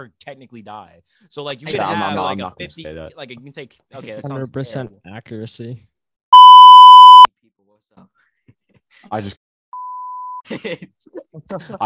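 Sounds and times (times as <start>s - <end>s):
speech: 0.0s - 5.9s, 8.0s - 8.2s, 8.9s - 9.4s, 10.5s - 11.8s
censor bleep: 6.4s - 7.3s.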